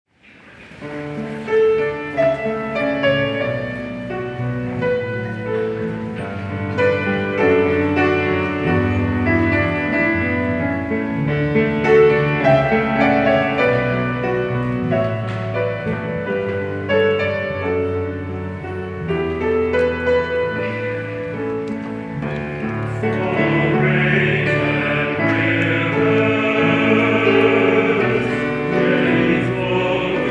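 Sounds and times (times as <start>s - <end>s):
piano: 0.1s - 30.2s
contemporary choir singing: 22.9s - 30.2s.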